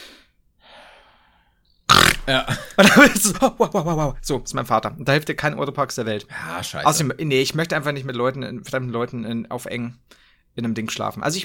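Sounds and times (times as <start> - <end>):
voice imitating a man's snoring: 1.9 - 2.6
laughter: 2.3 - 4.2
speech: 2.3 - 11.4.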